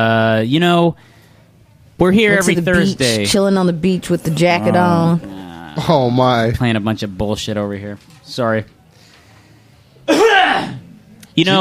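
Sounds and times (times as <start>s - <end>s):
speech: 0.0s - 1.2s, 2.0s - 8.8s, 11.4s - 11.5s
stifled cough into the microphone: 10.1s - 10.9s.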